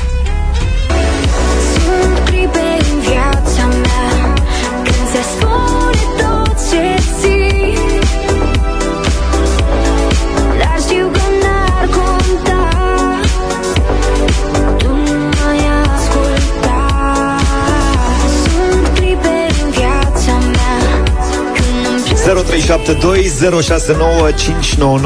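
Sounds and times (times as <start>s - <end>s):
cover of a pop song with full band, deep bass and sung melody: 0.0s - 25.0s
speech: 23.0s - 25.0s.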